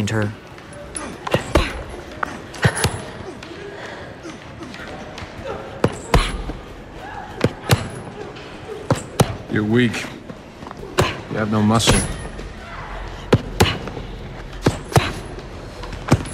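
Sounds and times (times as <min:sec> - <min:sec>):
speech: 0:00.0 - 0:00.4, 0:09.5 - 0:10.1, 0:11.4 - 0:12.2
faint indistinct voices: 0:00.0 - 0:16.3
low murmur of noise: 0:00.0 - 0:16.3
woman punching at sparring rings: 0:00.9 - 0:03.4, 0:05.4 - 0:09.5, 0:10.8 - 0:12.6, 0:13.2 - 0:16.3.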